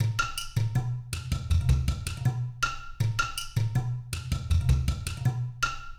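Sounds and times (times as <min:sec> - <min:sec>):
udu drum: 0:00.0 - 0:05.9.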